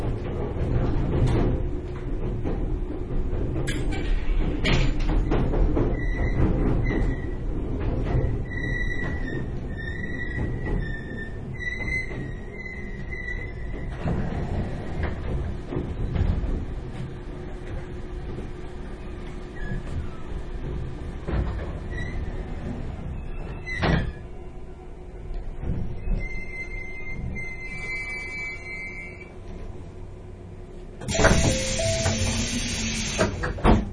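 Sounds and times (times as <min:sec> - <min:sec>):
train rolling on with a low continuous clatter: 0:00.0 - 0:24.3, 0:31.0 - 0:33.9
train carriage rumble: 0:00.0 - 0:33.9
train sliding doors shutting with a sharp thud: 0:31.0 - 0:33.9
high electronic beeps in a train carriage: 0:31.1 - 0:32.6.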